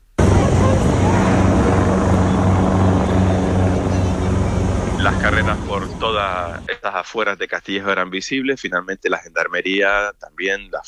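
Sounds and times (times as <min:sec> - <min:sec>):
military helicopter flying overhead: 0:00.2 - 0:06.7
speech: 0:05.5 - 0:10.8.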